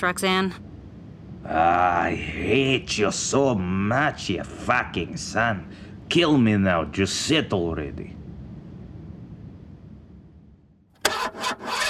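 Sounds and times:
speech: 0.0s - 0.7s, 1.4s - 8.2s
low rumbling: 0.0s - 10.9s
car engine cranking roughly and sputtering to life: 11.0s - 11.8s.

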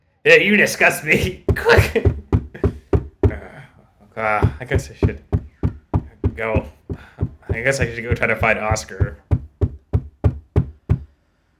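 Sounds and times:
speech: 0.2s - 2.2s, 4.2s - 5.3s, 6.4s - 9.2s
firm knocking on a door: 1.2s - 3.5s, 4.4s - 11.1s
laughter: 1.6s - 3.5s.

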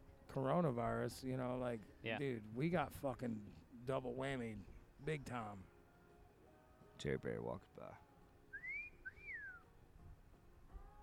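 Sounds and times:
speech: 0.3s - 5.7s, 7.0s - 8.1s
two-part catcall whistle: 8.5s - 9.6s.

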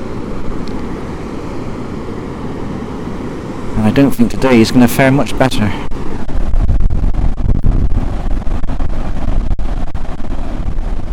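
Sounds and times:
wind blowing outdoors during a walk: 0.0s - 11.1s
speech: 4.0s - 5.9s.

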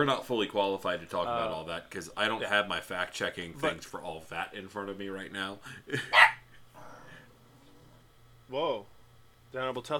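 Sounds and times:
speech: 0.0s - 6.4s, 8.5s - 8.9s, 9.5s - 9.9s
faint low hum: 0.0s - 9.9s
dog barking: 6.1s - 6.4s.

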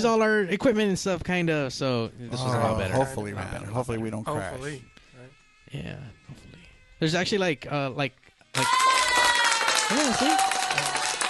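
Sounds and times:
speech: 0.0s - 4.9s, 5.7s - 8.9s, 9.9s - 10.6s
crowd applauding: 8.5s - 11.2s.

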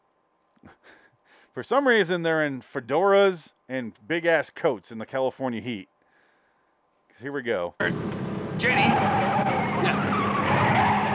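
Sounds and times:
speech: 1.6s - 5.9s, 7.2s - 9.5s
car engine: 7.8s - 11.1s
car tires skidding and squealing across pavement: 8.5s - 11.1s.

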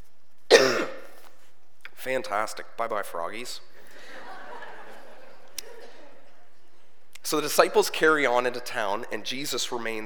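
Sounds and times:
single sharp cough trailing into a throaty rasp: 0.5s - 1.2s
speech: 2.0s - 3.7s, 7.3s - 10.0s
laughter: 3.8s - 6.7s.

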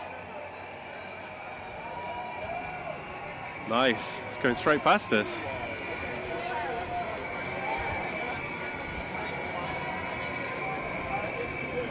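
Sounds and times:
large outdoor crowd cheering and shouting at a street celebration: 0.0s - 11.8s
speech: 3.7s - 5.6s.

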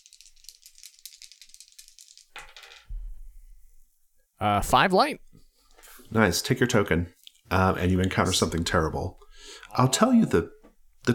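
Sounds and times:
two dice being shaken and rolled across a surface: 0.0s - 2.9s
speech: 4.4s - 5.2s, 6.1s - 11.1s.

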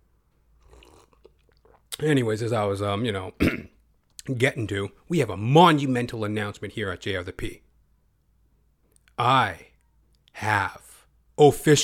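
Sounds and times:
person sipping water: 0.5s - 2.0s
swallowing: 0.6s - 2.0s
speech: 2.0s - 3.7s, 4.3s - 7.6s, 9.2s - 9.7s, 10.4s - 10.8s, 11.4s - 11.8s.

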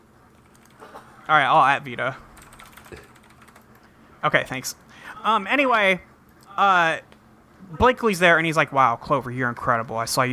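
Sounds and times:
keyboard typing of a tweet: 0.3s - 0.8s, 2.3s - 3.9s
speech: 1.3s - 2.3s, 4.2s - 10.3s.

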